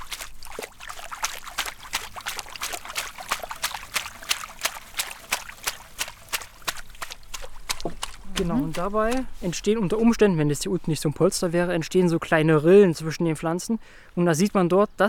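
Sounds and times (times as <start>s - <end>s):
aquarium water sloshing and bubbling as plants are pressed down: 0.0s - 9.6s
speech: 8.4s - 15.0s.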